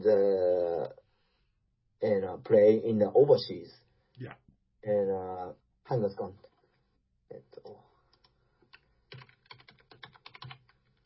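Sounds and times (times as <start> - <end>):
speech: 0.0 - 0.5, 2.0 - 6.5, 7.3 - 7.9
computer keyboard keys clicking: 8.1 - 11.0.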